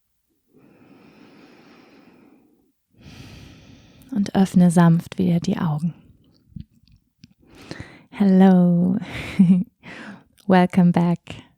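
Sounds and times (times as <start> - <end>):
deep slow breathing in and out during a guided meditation: 0.5 - 4.1, 7.4 - 8.1, 9.8 - 10.3
speech: 4.2 - 6.0, 8.2 - 11.5.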